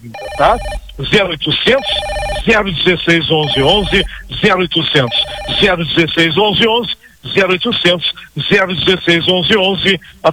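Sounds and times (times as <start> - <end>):
electronic telephone ring signalling incoming calls: 0.0 - 6.0
speech: 0.0 - 10.3.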